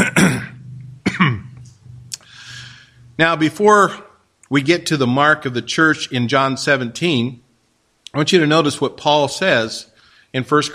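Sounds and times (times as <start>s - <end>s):
man clearing his throat during a church service: 0.0s - 1.6s
speech: 3.2s - 7.4s, 8.1s - 10.7s.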